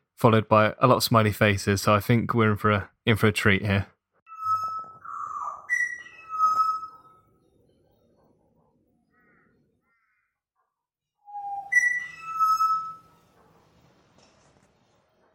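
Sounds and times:
speech: 0.2 - 3.9
butcher birds singing with fluting whistled notes: 4.3 - 8.2, 11.3 - 13.3.

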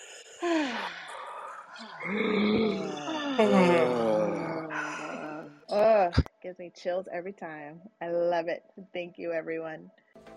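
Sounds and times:
overlapping voiced sighs and groans of a group: 0.0 - 6.0
group of people taking a deep breath and exhaling loudly: 1.8 - 5.5
speech: 2.0 - 4.1, 6.5 - 10.0.

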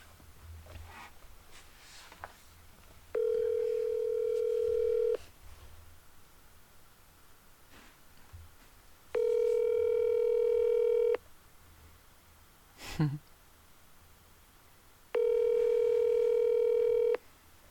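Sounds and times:
outgoing phone call ringback tone: 3.2 - 5.2, 9.2 - 11.2, 15.2 - 17.2.

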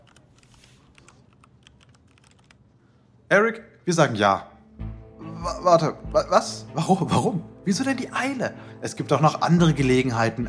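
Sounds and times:
computer keyboard typing an email: 0.0 - 2.6
noise: 0.0 - 10.4
speech: 3.3 - 4.5, 5.4 - 10.4.

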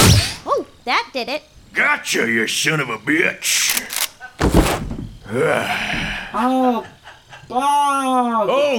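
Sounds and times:
single sharp loud gunshot: 0.0 - 0.4
speech: 0.8 - 8.7
person strained gasping and groaning: 5.3 - 6.5.

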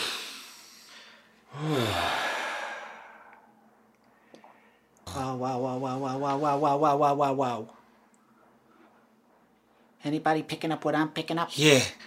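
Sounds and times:
louder voiced sigh falling in pitch: 0.0 - 3.5
person breathing deeply in and out: 0.0 - 3.6
speech: 5.2 - 7.8, 10.0 - 12.0.

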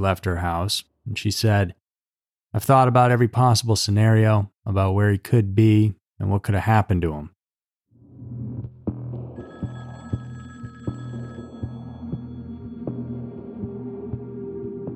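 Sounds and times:
speech: 0.0 - 1.8, 2.5 - 7.4
low throbbing pulse: 8.0 - 14.9
telephone ringing with a high electronic tone: 9.4 - 12.9.

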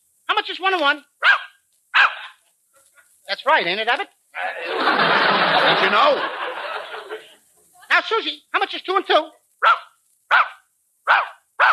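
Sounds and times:
speech: 0.5 - 1.4, 3.3 - 6.4, 8.0 - 10.4
dog barking: 1.2 - 2.4, 9.6 - 11.7
laughter: 4.4 - 7.5.

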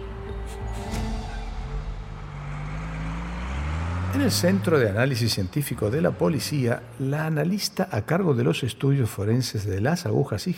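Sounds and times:
bus engine accelerating: 0.0 - 7.9
speech: 4.1 - 10.5.

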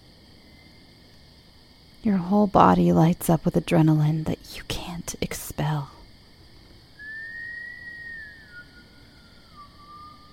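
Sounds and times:
low hiss: 0.0 - 10.3
speech: 2.0 - 6.0
long whistled note: 7.0 - 10.3.

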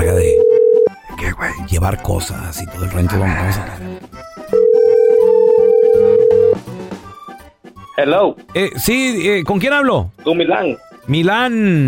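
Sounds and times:
quiet music playing: 0.0 - 11.8
telephone ringing tone beep: 0.2 - 0.9, 4.5 - 6.6
speech: 1.8 - 3.9, 8.0 - 11.8.

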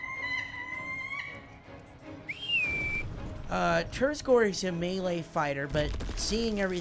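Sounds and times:
person whistling: 2.2 - 3.1
speech: 3.5 - 6.8.

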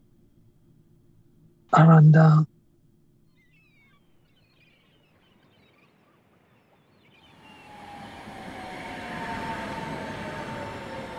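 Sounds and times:
speech: 1.8 - 2.5
faint rising whine: 7.2 - 11.1
tram pulling away and gathering speed: 7.3 - 11.1.

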